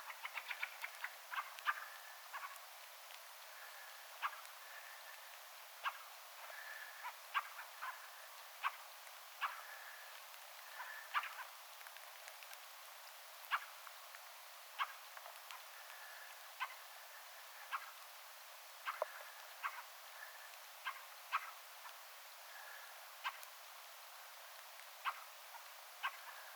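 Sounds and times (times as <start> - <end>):
fainter calls of other fieldfares: 0.0 - 2.7, 3.5 - 11.6, 13.5 - 13.8, 14.7 - 18.0, 18.8 - 23.5, 25.0 - 26.5.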